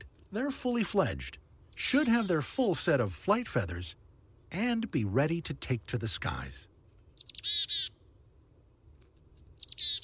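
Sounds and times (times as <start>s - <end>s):
speech: 0.3s - 6.7s
chickadee calls: 7.2s - 8.0s, 9.6s - 10.0s.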